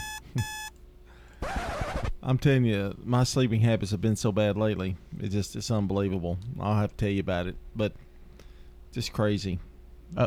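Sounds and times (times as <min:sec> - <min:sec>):
alarm clock beeping: 0:00.0 - 0:00.7
speech: 0:00.4 - 0:00.6, 0:02.3 - 0:08.1, 0:08.9 - 0:10.2.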